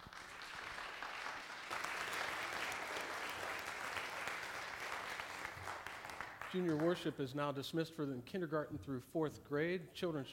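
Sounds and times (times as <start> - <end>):
church audience applauding: 0.0 - 7.2
speech: 6.5 - 10.3.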